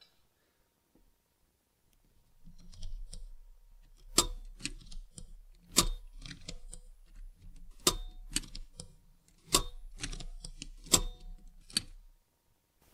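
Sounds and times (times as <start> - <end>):
teletype keyboard typing: 2.5 - 12.0.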